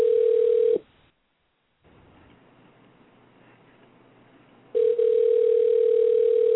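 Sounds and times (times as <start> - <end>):
electronic phone ringing tone over a phone line: 0.0 - 0.8, 4.8 - 6.5
faint phone line hiss: 0.8 - 4.8.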